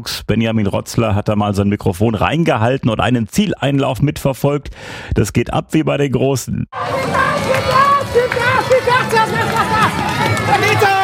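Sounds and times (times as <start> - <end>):
speech: 0.0 - 11.0
spectators shouting and cheering at a children's balance-bike race finish on a market square: 6.8 - 11.0.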